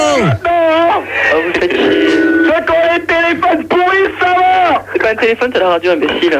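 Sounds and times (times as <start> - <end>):
low electrical hum: 0.0 - 6.3
radio broadcast voice: 0.0 - 6.3.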